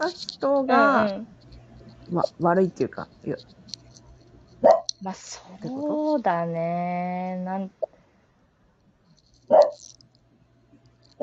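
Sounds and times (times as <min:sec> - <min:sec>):
speech: 0:00.0 - 0:01.4, 0:02.1 - 0:03.8, 0:04.6 - 0:07.9, 0:09.5 - 0:10.0
single sharp dog bark: 0:04.6 - 0:04.9, 0:09.5 - 0:09.8.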